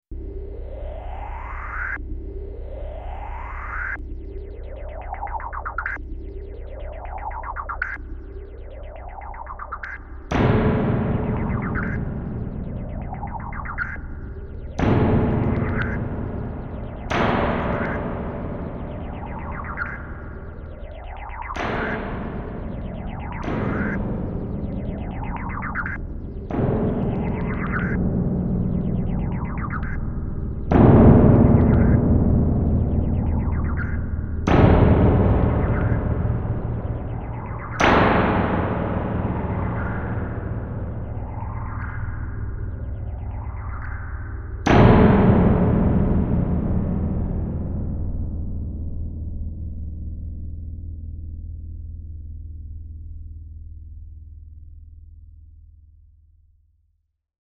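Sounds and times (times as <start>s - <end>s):
retro crash tone: 9.0s - 49.0s.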